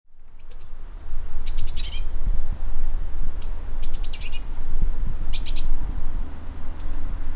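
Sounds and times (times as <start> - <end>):
constant low-pitched background rumble: 0.1 - 7.3
Eurasian blue tit Cyanistes caeruleus calls: 0.4 - 0.8, 1.4 - 2.1, 3.4 - 4.5, 5.3 - 5.8, 6.8 - 7.2.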